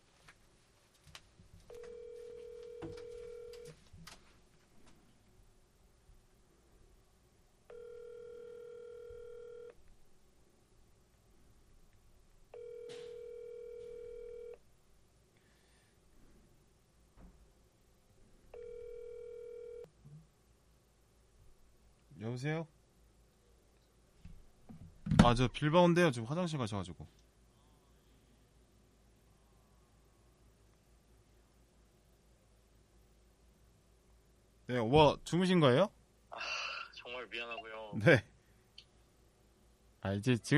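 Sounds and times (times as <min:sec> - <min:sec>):
phone ringing with an incoming call: 0:01.7 - 0:03.8, 0:07.7 - 0:09.8, 0:12.5 - 0:14.6, 0:18.5 - 0:19.9
speech: 0:22.4 - 0:22.7, 0:25.3 - 0:27.2, 0:34.9 - 0:36.0, 0:37.4 - 0:38.3, 0:40.1 - 0:40.5.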